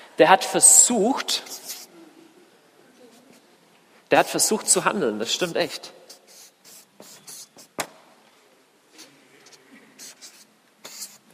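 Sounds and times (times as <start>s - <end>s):
speech: 0.2s - 1.7s, 4.1s - 6.0s
word written out by hand in quick scratching strokes: 1.4s - 1.9s, 6.1s - 7.8s, 9.5s - 11.2s.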